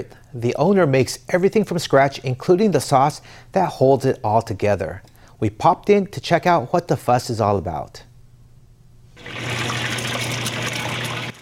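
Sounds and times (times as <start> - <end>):
speech: 0.0 - 8.1
dough sizzling and bubbling in hot oil in a deep fryer: 9.2 - 11.4.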